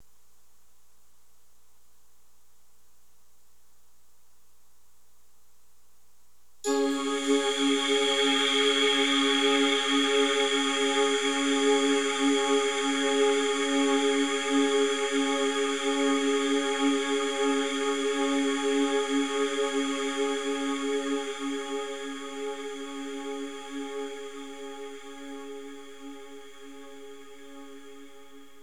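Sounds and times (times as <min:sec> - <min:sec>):
synth pad: 0:06.7 - 0:28.6.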